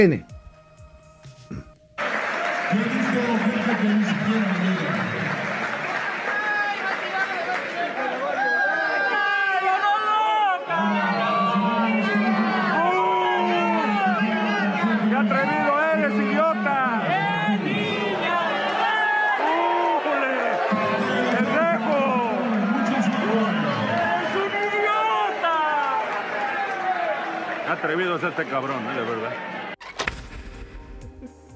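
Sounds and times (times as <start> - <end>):
speech: 0.0 - 0.3, 27.8 - 29.5
large baseball stadium crowd in Veracruz booing: 1.2 - 29.8
laughter: 1.5 - 6.4.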